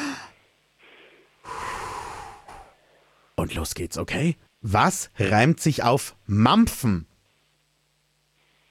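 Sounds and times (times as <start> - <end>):
deep breath in and out: 0.0 - 3.4
speech: 3.4 - 7.1.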